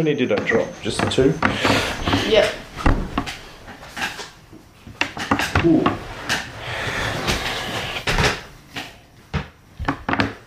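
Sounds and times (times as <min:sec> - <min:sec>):
speech: 0:00.0 - 0:02.6, 0:05.6 - 0:06.0
wooden table creaking and knocking: 0:00.5 - 0:04.3, 0:05.1 - 0:08.5.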